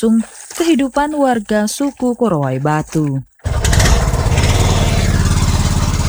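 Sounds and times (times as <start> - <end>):
speech: 0.0 - 3.3
small ketinting longtail motorboat engine running: 3.4 - 6.0.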